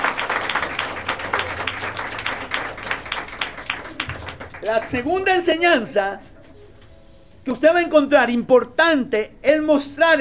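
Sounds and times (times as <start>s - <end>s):
church congregation applause during a worship service: 0.0s - 5.6s
speech: 4.6s - 6.3s, 7.4s - 10.1s.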